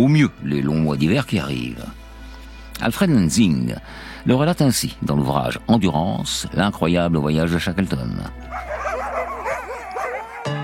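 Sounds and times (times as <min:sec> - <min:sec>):
speech: 0:00.0 - 0:02.0, 0:02.8 - 0:08.7
sled dogs unloaded for a polar expedition yipping and whimpering: 0:08.5 - 0:10.6.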